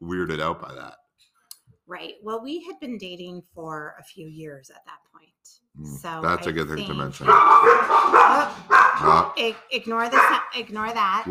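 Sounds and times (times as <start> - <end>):
speech: 0.1 - 1.0, 1.9 - 11.2
dogs barking loudly: 6.9 - 11.2.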